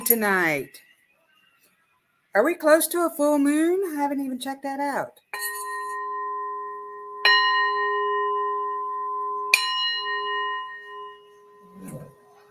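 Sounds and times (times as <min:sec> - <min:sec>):
speech: 0:00.1 - 0:00.9, 0:02.3 - 0:05.5
small decorative bell ringing: 0:05.3 - 0:12.4.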